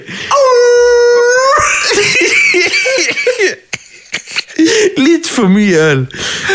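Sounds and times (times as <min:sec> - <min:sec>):
person imitating a wolf howl: 0:00.3 - 0:01.8
person yelping and whooping: 0:00.3 - 0:02.4
laughter: 0:01.6 - 0:05.1
speech: 0:05.0 - 0:06.3.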